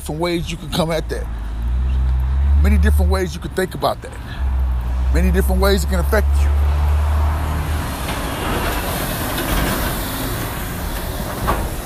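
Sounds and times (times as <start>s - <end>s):
speech: 0.0s - 1.4s, 2.6s - 4.5s, 5.1s - 6.7s
large truck rumbling past: 0.0s - 11.8s.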